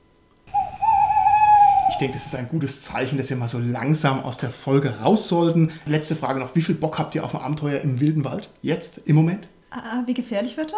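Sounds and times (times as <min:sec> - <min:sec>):
little owl whistling call: 0:00.5 - 0:02.5
speech: 0:01.9 - 0:10.7.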